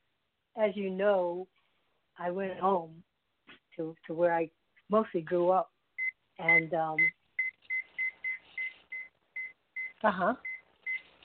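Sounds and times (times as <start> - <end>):
speech: 0.6 - 1.6, 2.2 - 3.1, 3.8 - 5.7, 6.4 - 7.2, 10.0 - 10.5
steady high electronic beeping: 6.0 - 11.1.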